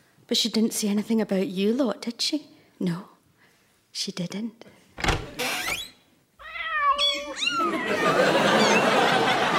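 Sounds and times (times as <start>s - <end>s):
speech: 0.3s - 3.1s, 3.9s - 4.8s
several kittens meowing: 6.4s - 9.1s
laughter: 7.5s - 9.5s.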